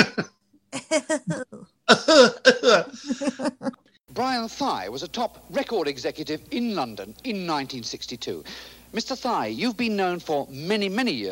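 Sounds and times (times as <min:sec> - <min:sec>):
laughter: 0:00.0 - 0:00.3, 0:00.9 - 0:03.8
man coughing: 0:00.0 - 0:00.3, 0:01.9 - 0:03.5
speech: 0:02.0 - 0:03.6, 0:04.3 - 0:11.3.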